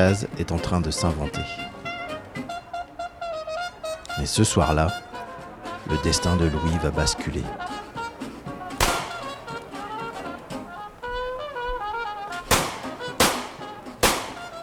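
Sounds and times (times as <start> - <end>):
speech: 0.0 - 1.8, 4.2 - 5.0, 5.9 - 7.7
murmur of voices: 0.0 - 14.6
music: 0.0 - 14.6
pistol shots fired into the air: 8.8 - 9.6, 12.5 - 14.6.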